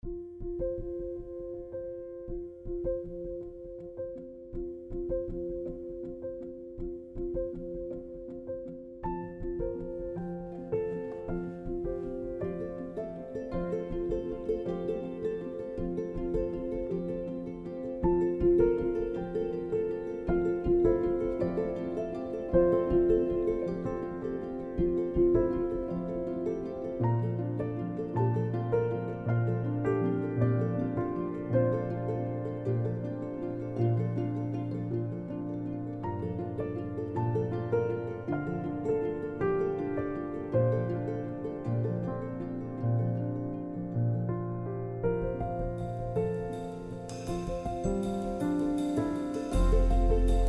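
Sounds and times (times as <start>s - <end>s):
piano: 0.0s - 50.4s
subtle hopeful ukulele: 0.0s - 50.4s
rhythmic ride cymbal: 45.8s - 50.4s.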